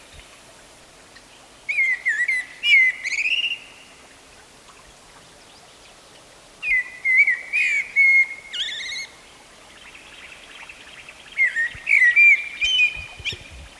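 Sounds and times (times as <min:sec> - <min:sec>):
Turdus merula common blackbird mellow whistled song with squeaky twitters: 0:01.7 - 0:03.9, 0:06.6 - 0:09.2, 0:09.8 - 0:13.5.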